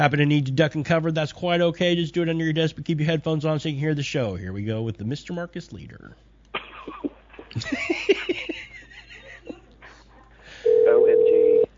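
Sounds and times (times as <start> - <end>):
speech: 0.0 - 8.6
people laughing: 6.6 - 10.4
telephone ring tone in a home: 10.6 - 11.7.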